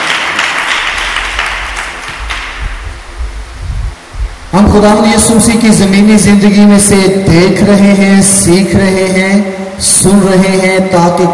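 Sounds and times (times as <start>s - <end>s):
church congregation applauding loudly: 0.0s - 2.6s
speech: 4.7s - 11.3s.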